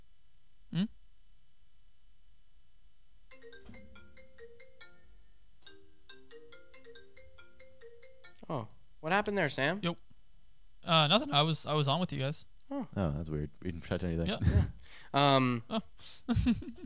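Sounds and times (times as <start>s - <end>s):
faint low noise: 0.0s - 16.8s
electronic phone ringtone during outgoing call: 3.3s - 8.4s
speech: 8.5s - 10.0s, 10.9s - 16.8s.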